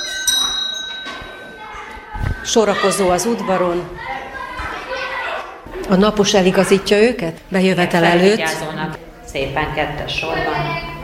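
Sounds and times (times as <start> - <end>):
school bell ringing to call children in for class: 0.0 - 3.5
speech: 2.4 - 4.2, 5.9 - 10.8.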